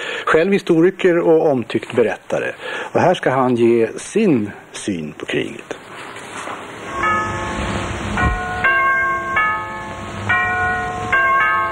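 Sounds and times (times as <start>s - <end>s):
speech: 0.3s - 5.8s
constant high hiss: 6.7s - 11.1s
church bells pealing: 6.8s - 11.7s.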